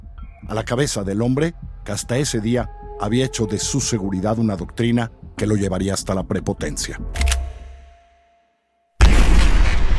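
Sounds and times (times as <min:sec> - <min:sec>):
speech: 0:00.5 - 0:07.2
submachine gun shot through a closed car window: 0:09.0 - 0:09.9.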